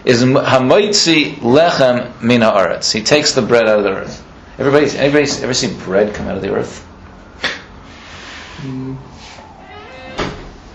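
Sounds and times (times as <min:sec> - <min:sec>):
speech: 0:00.1 - 0:07.6, 0:08.6 - 0:09.1
door creaking: 0:08.6 - 0:10.7
door thudding shut: 0:09.8 - 0:10.6.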